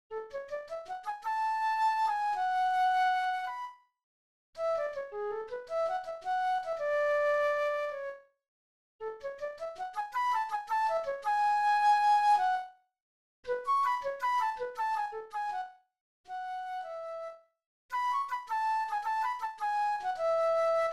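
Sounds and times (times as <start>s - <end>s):
flute: 0.1s - 3.9s, 4.6s - 8.3s, 9.0s - 12.8s, 13.5s - 20.9s
oboe: 0.5s - 3.8s, 4.6s - 8.2s, 9.4s - 12.7s, 13.5s - 15.7s, 16.3s - 17.4s, 18.0s - 20.9s.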